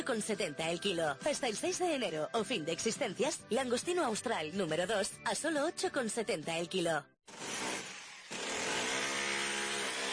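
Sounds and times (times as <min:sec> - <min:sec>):
speech: 0:00.0 - 0:07.1
electric Makita power drill running: 0:07.3 - 0:10.1.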